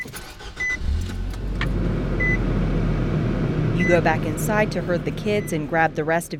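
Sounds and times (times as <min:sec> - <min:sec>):
short electronic car dashboard beeps: 0:00.0 - 0:01.0, 0:02.2 - 0:02.5, 0:03.7 - 0:06.3
car engine cranking and idling on a nearly freezing morning in Salt Lake City: 0:00.0 - 0:06.3
speech: 0:03.9 - 0:06.3.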